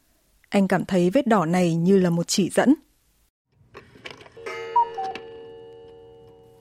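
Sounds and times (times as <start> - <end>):
speech: 0.5 - 2.9
clock chime striking one o'clock: 4.3 - 6.5.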